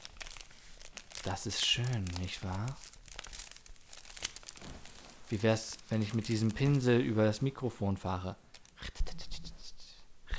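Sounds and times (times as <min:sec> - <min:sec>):
piece of paper rubbing and crinkling: 0:00.0 - 0:07.6
speech: 0:01.2 - 0:02.9, 0:05.3 - 0:08.9.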